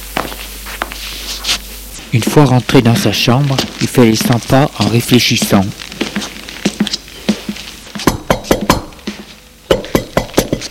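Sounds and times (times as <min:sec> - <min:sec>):
speech: 0:02.1 - 0:06.0
sharp knocking on a bedroom door: 0:08.0 - 0:08.9, 0:09.7 - 0:10.6.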